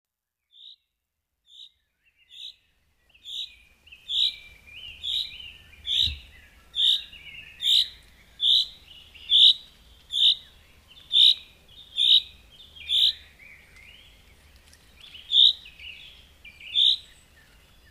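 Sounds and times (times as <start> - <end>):
common chaffinch giving sharp bright single notes: 3.2 - 14.2, 14.9 - 17.8.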